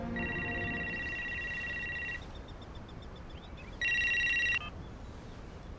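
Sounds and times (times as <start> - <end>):
mobile phone electronic ringtone: 0.2 - 2.2, 3.8 - 4.7.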